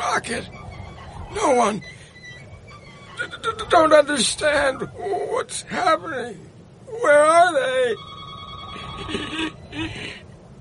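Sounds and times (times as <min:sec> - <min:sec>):
low hum: 0:00.0 - 0:10.6
speech: 0:00.2 - 0:00.6, 0:01.3 - 0:02.0, 0:03.2 - 0:08.2, 0:08.8 - 0:10.2
telephone bell ringing: 0:07.9 - 0:09.2.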